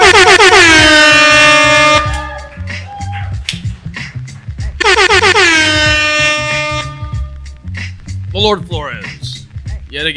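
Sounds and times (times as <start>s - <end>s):
air horn blasts: 0.0s - 2.3s, 4.8s - 7.3s
thumping music beat: 0.0s - 10.1s
speech: 8.5s - 8.9s, 9.9s - 10.1s.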